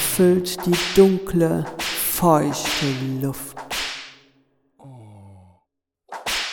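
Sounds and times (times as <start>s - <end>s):
speech: 0.2s - 3.6s
whip lash striking skin: 0.6s - 4.2s, 6.1s - 6.5s
drawn-out moan-like voiced sigh: 4.8s - 5.6s.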